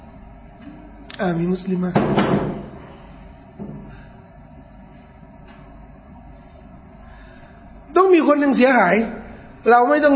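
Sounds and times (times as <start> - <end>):
quiet low hum in a room: 0.0 - 10.1
speech: 1.2 - 2.5, 8.2 - 10.1
door closing with a soft thud: 2.0 - 2.8.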